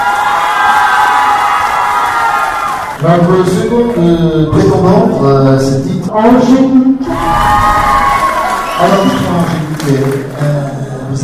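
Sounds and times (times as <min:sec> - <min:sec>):
crowd cheering and applauding a female contestant at a pageant-style event: 0:00.0 - 0:03.0, 0:07.0 - 0:10.8
speech: 0:03.0 - 0:08.0, 0:08.8 - 0:11.2.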